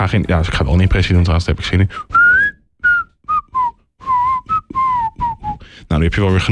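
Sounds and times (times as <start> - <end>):
speech: 0.0 - 2.2, 6.0 - 6.5
whistled melody from a song: 2.0 - 5.8.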